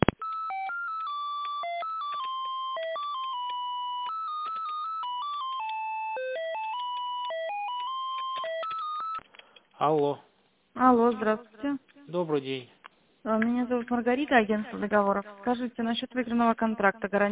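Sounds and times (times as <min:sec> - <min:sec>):
electronic telephone tones during an office call transfer: 0:00.0 - 0:09.2
speech: 0:09.8 - 0:17.3.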